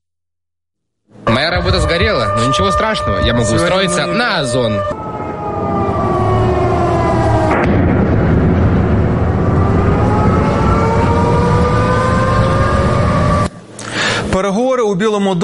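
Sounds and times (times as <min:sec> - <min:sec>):
wailing sirens in a city: 0:01.2 - 0:13.8
speech: 0:01.3 - 0:05.1, 0:14.5 - 0:15.4
deep explosion blast in a city: 0:01.3 - 0:13.4
dense rumbling roar: 0:01.4 - 0:13.5.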